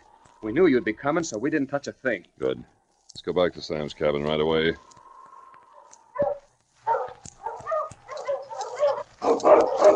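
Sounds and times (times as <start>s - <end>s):
speech: 0.4s - 4.9s
sled dogs barking and whimpering: 5.8s - 9.9s.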